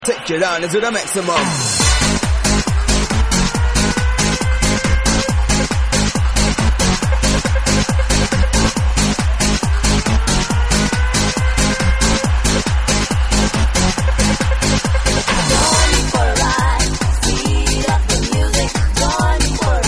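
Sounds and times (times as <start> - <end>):
vocals: 0.0 - 10.4, 15.0 - 19.8
horns: 1.2 - 19.8.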